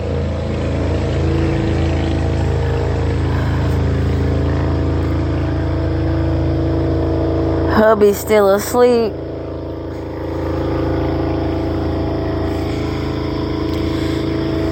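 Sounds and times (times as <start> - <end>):
motorcycle passing by with engine roaring: 0.0 - 14.7
speech: 7.9 - 9.2.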